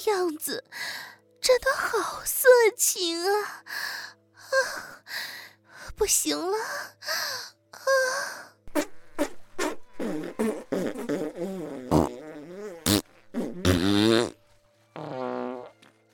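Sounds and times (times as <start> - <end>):
speech: 0.0 - 9.3, 10.0 - 10.9
farts: 8.7 - 16.0.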